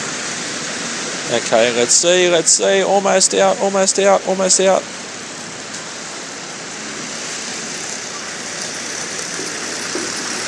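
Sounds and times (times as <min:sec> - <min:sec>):
speech: 0:01.3 - 0:05.1
car spinning all four tyres: 0:05.5 - 0:10.4.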